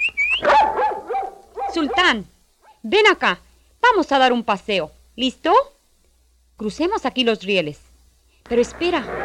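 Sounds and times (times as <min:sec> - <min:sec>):
small dog whining: 0:00.2 - 0:02.2
small dog yapping and barking: 0:00.4 - 0:02.8
speech: 0:01.8 - 0:05.8, 0:06.6 - 0:07.9, 0:08.5 - 0:09.2.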